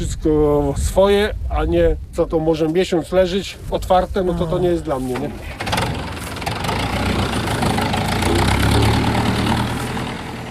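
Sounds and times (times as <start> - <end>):
speech: 0.0 - 5.7
tractor engine chugging and pulling away: 5.4 - 10.4.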